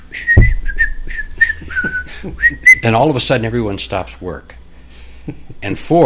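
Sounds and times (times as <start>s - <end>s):
person whistling a cheerful tune: 0.1s - 2.8s
speech: 2.2s - 4.6s, 5.3s - 6.0s.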